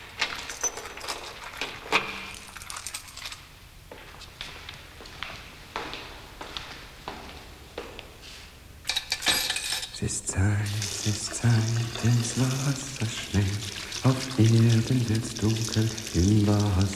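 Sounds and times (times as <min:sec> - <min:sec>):
keys jangling: 0:00.1 - 0:03.5, 0:08.9 - 0:10.0
speech: 0:10.1 - 0:16.9.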